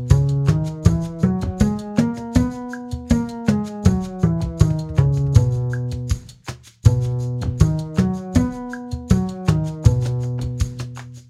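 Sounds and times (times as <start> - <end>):
scales in concert B: 0.1 - 5.9, 7.6 - 10.6.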